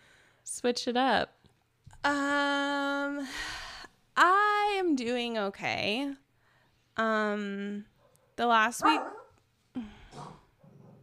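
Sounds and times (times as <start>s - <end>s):
speech: 0.6s - 1.4s, 2.0s - 3.6s, 4.2s - 6.2s, 7.0s - 9.2s, 9.8s - 10.4s
dog barking: 8.0s - 9.3s.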